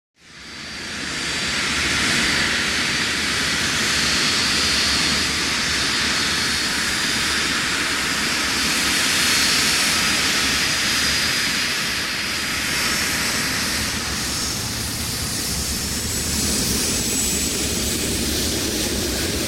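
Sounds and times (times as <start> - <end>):
large jet taking off and away, exterior: 0.8 - 19.4.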